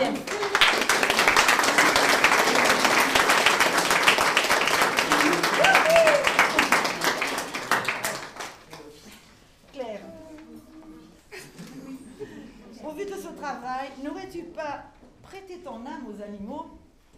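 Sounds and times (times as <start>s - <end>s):
crowd applauding: 0.0s - 8.9s.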